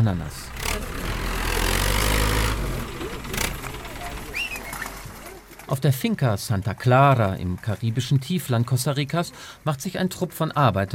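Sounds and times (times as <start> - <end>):
speech: 0.0 - 0.6, 5.7 - 10.9
tractor engine pulling trailers along muddy field tracks: 0.0 - 10.9
bird chirps: 4.2 - 5.0.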